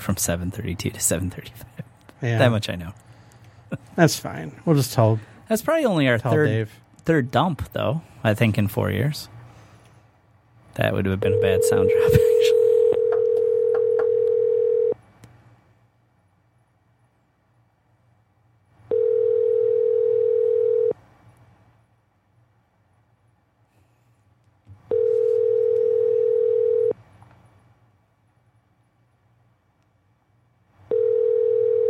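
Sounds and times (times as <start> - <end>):
speech: 0.0 - 3.0, 3.7 - 9.3, 10.8 - 12.6
faint low hum: 0.0 - 31.8
two-tone telephone ringing signal while calling someone: 12.6 - 15.0, 18.9 - 20.9, 24.9 - 26.9, 30.9 - 31.8.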